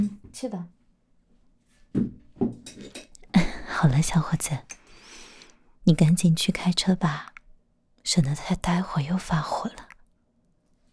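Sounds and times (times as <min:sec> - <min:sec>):
speech: 0:00.4 - 0:00.8, 0:01.9 - 0:02.2, 0:03.8 - 0:04.8, 0:05.9 - 0:07.3, 0:08.0 - 0:09.8
bowls and chopsticks clinking as they are cleared away after breakfast: 0:02.4 - 0:03.3.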